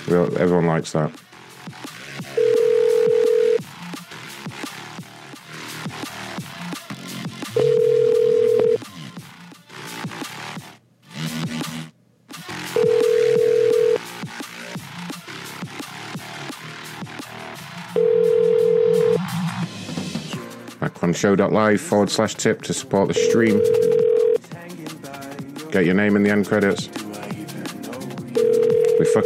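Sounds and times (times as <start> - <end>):
busy music: 0.0 - 29.2
speech: 0.1 - 1.3, 21.2 - 23.9, 25.7 - 27.0, 29.1 - 29.2
unanswered phone call ringback tones: 2.4 - 3.6, 7.6 - 8.8, 12.7 - 14.0, 18.0 - 19.2, 23.2 - 24.4, 28.4 - 29.2.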